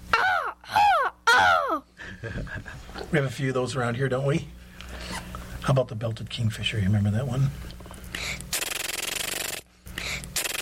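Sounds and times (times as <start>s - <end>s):
person imitating a crow's caw with the voice: 0.1s - 1.8s
speech: 3.1s - 4.6s, 5.7s - 7.7s.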